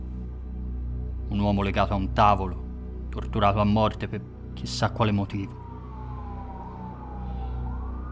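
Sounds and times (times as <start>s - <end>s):
speech: 1.3s - 5.6s
distant police sirens wailing: 4.8s - 8.1s.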